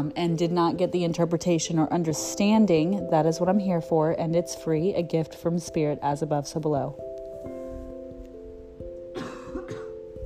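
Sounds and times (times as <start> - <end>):
speech: 0.0 - 7.1
short dry coughs from a very dry throat: 9.1 - 10.0.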